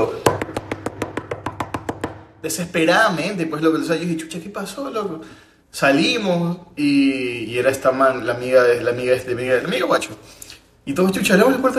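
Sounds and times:
speech: 0.0 - 0.4, 2.4 - 11.7
frantic rapid knocking imitating desperate knocking on a door: 0.2 - 2.4.

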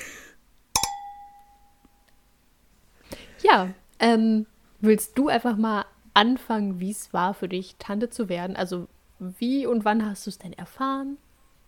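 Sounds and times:
two glasses clinking in a toast: 0.8 - 1.9
speech: 3.5 - 11.2.

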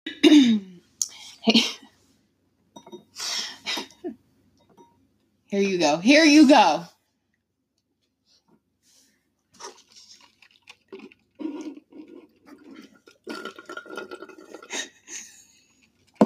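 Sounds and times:
speech: 1.4 - 1.8, 5.5 - 6.9
ASMR juice sound effects of dripping and sloshing liquid: 9.6 - 14.7.

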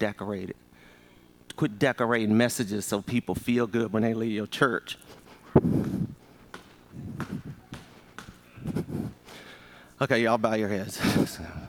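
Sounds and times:
speech: 0.0 - 0.7, 1.6 - 5.9, 10.0 - 11.6
person stomping on a hollow wooden stage floor in a church: 5.5 - 9.2.

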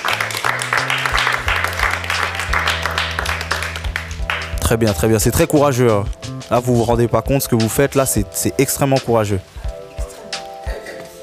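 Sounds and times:
audience applauding: 0.0 - 5.0
speech: 4.7 - 9.6.

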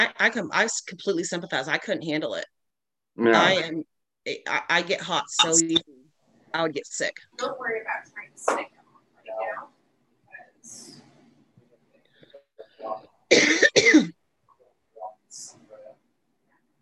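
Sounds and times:
speech: 0.0 - 2.6, 3.2 - 9.7, 12.8 - 14.2
smoker coughing: 13.3 - 14.2.

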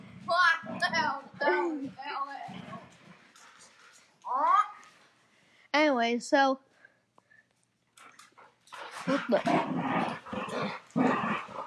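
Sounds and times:
dogs growling and fighting: 0.0 - 4.0, 8.0 - 11.6
speech: 1.0 - 2.6, 5.8 - 6.7, 9.0 - 11.2.

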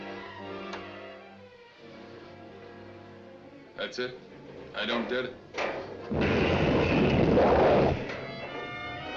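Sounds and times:
speech: 3.8 - 6.3
rocket engine roar as a spacecraft blasts off: 6.1 - 8.2.

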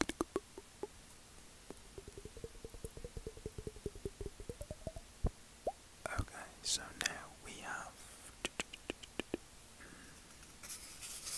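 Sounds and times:
wet mouth clicks and pops: 0.0 - 1.0, 1.6 - 6.3, 8.4 - 9.4
low hum: 0.0 - 8.2
breathy hissing bursts: 6.2 - 8.5.

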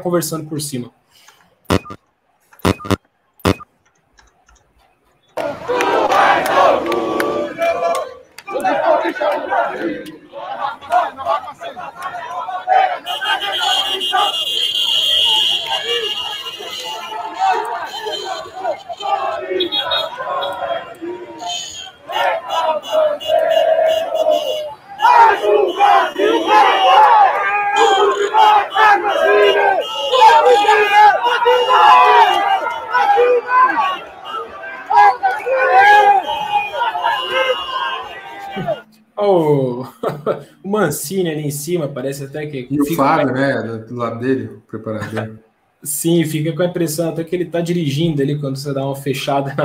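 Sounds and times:
speech: 0.0 - 2.0, 40.9 - 49.6
sharp clicks: 1.7 - 4.8
large crowd of fans chanting and shouting at a team's send-off reception: 5.4 - 39.2
laughter: 39.8 - 40.6, 49.4 - 49.6.

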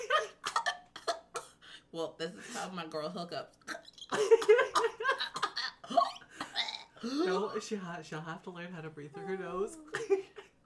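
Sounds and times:
speech: 1.9 - 6.1, 7.0 - 10.4
person imitating hiccups with their voice: 5.6 - 7.2.

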